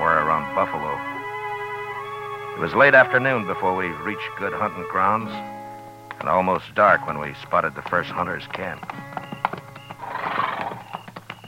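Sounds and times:
speech: 0:00.6 - 0:01.1, 0:02.6 - 0:05.6, 0:06.2 - 0:09.2
horse hooves clip-clopping: 0:06.1 - 0:11.4
horse neighing in a long rising whinny: 0:08.5 - 0:11.2.

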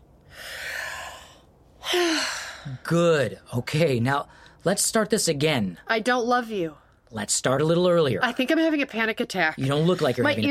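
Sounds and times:
nervous character breathing deeply in an audio drama: 0:00.2 - 0:02.8
speech: 0:02.7 - 0:10.4.

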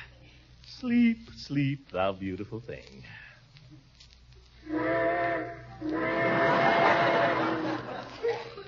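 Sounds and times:
speech: 0:00.8 - 0:03.8
steam train whistle blasts: 0:04.6 - 0:07.7
laughter: 0:06.1 - 0:08.6.

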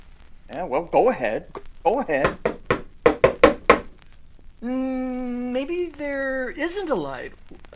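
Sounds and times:
speech: 0:00.5 - 0:02.5, 0:04.6 - 0:07.7
firm knocks on a door: 0:02.2 - 0:03.9.

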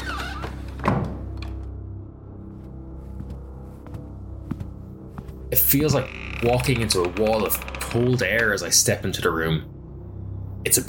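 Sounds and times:
door in a foyer opening with a dull thunk: 0:00.8 - 0:01.6
speech: 0:05.6 - 0:09.7, 0:10.6 - 0:10.8.

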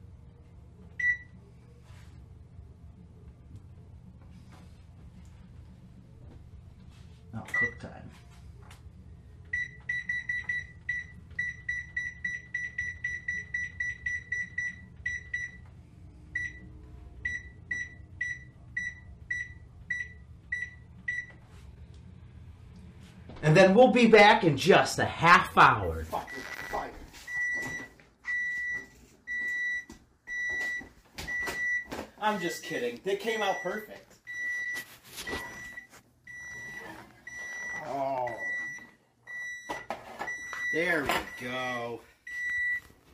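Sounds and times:
low hum: 0:00.0 - 0:43.1
speech: 0:07.4 - 0:08.3, 0:23.4 - 0:26.6, 0:32.3 - 0:34.1, 0:40.8 - 0:42.1
oven control panel timer beeping as it is set: 0:07.5 - 0:07.8, 0:09.5 - 0:15.7, 0:16.3 - 0:21.4, 0:26.2 - 0:42.9.

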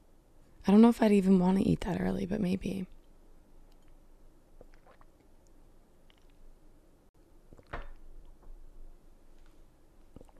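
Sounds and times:
speech: 0:00.7 - 0:03.0
soft wet mouth clicks: 0:04.6 - 0:05.3, 0:06.0 - 0:06.4
gulping water: 0:04.6 - 0:06.4, 0:10.1 - 0:10.3.

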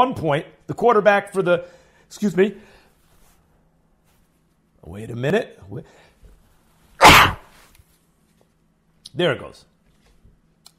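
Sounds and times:
speech: 0:00.0 - 0:02.8, 0:04.8 - 0:06.1, 0:09.2 - 0:09.7
person sneezing: 0:07.0 - 0:07.7.

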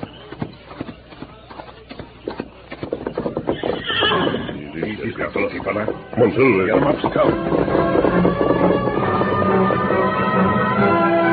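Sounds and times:
horse hooves clip-clopping: 0:00.0 - 0:11.2
horse whinnying: 0:03.4 - 0:04.9.

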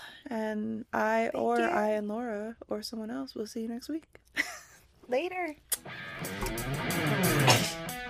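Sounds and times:
speech: 0:00.3 - 0:04.5, 0:05.1 - 0:07.0
person sneezing: 0:07.4 - 0:07.9.

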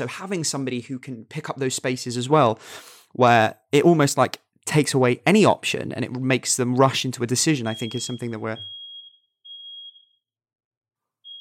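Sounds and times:
speech: 0:00.0 - 0:08.8
fire alarm beeping high-pitched: 0:07.6 - 0:10.3, 0:11.2 - 0:11.3.

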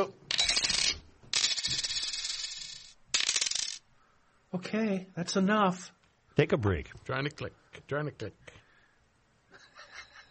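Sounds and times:
coins dropping into a bucket: 0:00.3 - 0:03.8
speech: 0:04.5 - 0:08.5.

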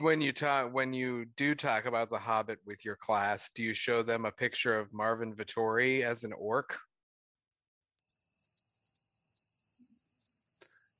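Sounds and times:
speech: 0:00.0 - 0:06.9
cricket chirping: 0:08.0 - 0:10.9.

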